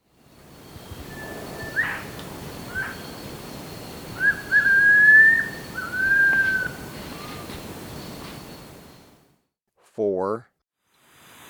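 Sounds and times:
background hiss: 0:00.0 - 0:09.3
striolated puffbird whistled call in Ecuador: 0:00.6 - 0:09.1
speech: 0:10.2 - 0:10.5.

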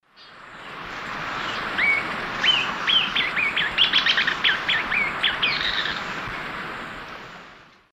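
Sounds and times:
Stigmatura napensis singing: 0:01.4 - 0:06.2.

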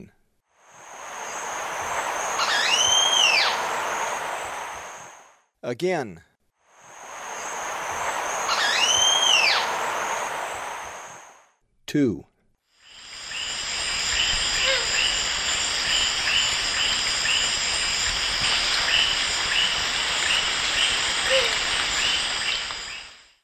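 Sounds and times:
Plum-throated Cotinga in South American eastern lowlands: 0:01.2 - 0:04.8, 0:07.4 - 0:10.8, 0:12.9 - 0:23.2.

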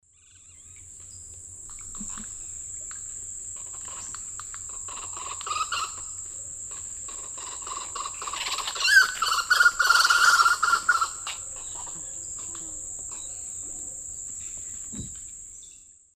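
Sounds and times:
Crotophaga major group calls in the Eastern Lowlands of South America: 0:03.6 - 0:14.0.

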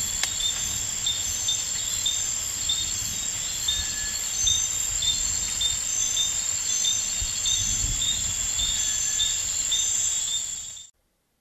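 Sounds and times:
steady high-pitched insect hum in the Ecuadorian Amazon: 0:00.0 - 0:10.9
Eleutherodactylus rain frog lower whistles: 0:03.6 - 0:10.9.

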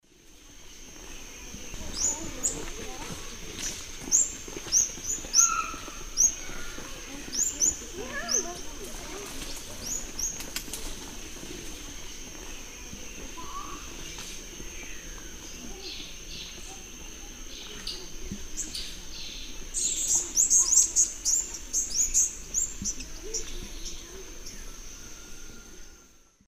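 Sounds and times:
Metopothrix aurantiaca calls in the Eastern Lowlands of South America: 0:00.5 - 0:26.2.

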